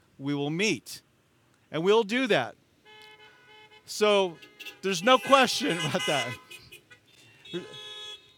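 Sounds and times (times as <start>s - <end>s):
speech: 0.2s - 1.1s, 1.7s - 2.6s, 3.9s - 6.4s, 7.5s - 7.8s
car horn honking: 2.8s - 8.3s
laughter: 5.2s - 6.4s.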